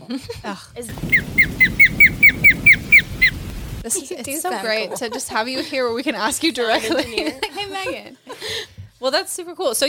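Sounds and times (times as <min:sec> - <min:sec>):
speech: 0:00.1 - 0:01.8, 0:03.8 - 0:09.8
low rumble: 0:00.9 - 0:03.8
osprey calling with sharp whistled chirps: 0:00.9 - 0:03.8.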